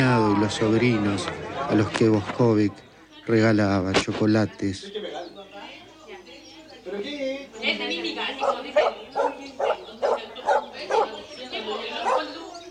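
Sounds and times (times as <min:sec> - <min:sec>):
speech: 0:00.0 - 0:05.2
dog barking: 0:08.4 - 0:11.3, 0:12.0 - 0:12.4.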